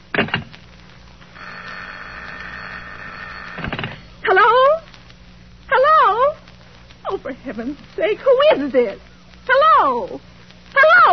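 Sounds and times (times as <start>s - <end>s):
steady continuous electronic tone: 0.0s - 11.1s
telephone bell ringing: 1.4s - 3.7s
speech: 7.2s - 10.3s.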